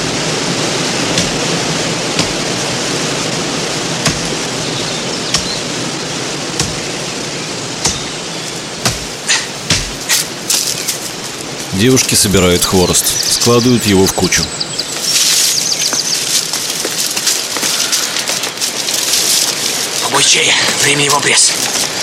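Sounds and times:
steady roar of rushing water: 0.0 - 22.0
axe chopping into a tree: 2.2 - 2.4, 4.0 - 4.4, 5.3 - 5.6, 6.6 - 6.9, 7.8 - 8.2, 8.8 - 10.6
speech: 11.8 - 14.7, 20.3 - 21.6.

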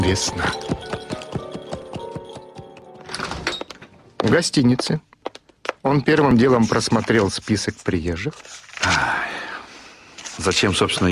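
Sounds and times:
horses trotting with hooves clip-clopping on a hard road: 0.0 - 3.0
speech: 0.1 - 0.9, 4.2 - 5.1, 5.8 - 9.2, 10.4 - 11.1.

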